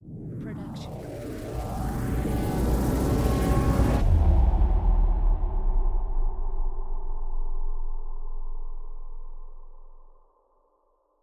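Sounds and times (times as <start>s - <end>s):
trailer hit stab: 1.1s - 9.7s.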